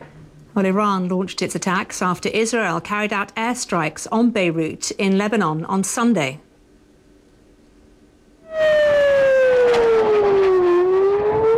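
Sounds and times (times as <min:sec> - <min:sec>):
speech: 0:00.6 - 0:06.5
air raid siren wailing: 0:08.4 - 0:11.5.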